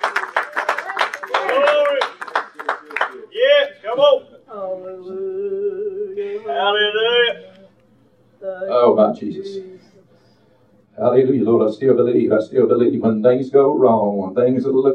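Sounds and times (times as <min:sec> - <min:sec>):
audience clapping hands in quick steady rhythm: 0:00.0 - 0:04.2
sustained singing: 0:04.3 - 0:07.8
speech: 0:09.0 - 0:09.9, 0:11.0 - 0:14.9.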